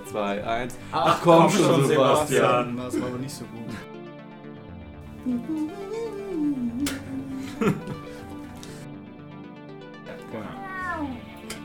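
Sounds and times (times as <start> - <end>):
speech: 0.1 - 3.9, 5.2 - 7.0, 7.6 - 8.1
laughter: 0.9 - 3.8, 7.2 - 8.4
cat meowing: 10.4 - 11.3.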